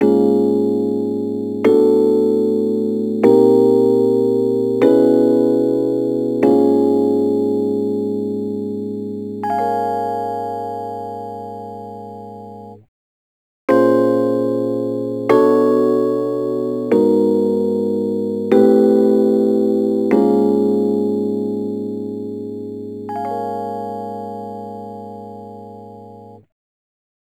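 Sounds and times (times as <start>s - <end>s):
Rhodes electric piano attacks: 0.0s - 10.3s, 13.7s - 26.2s.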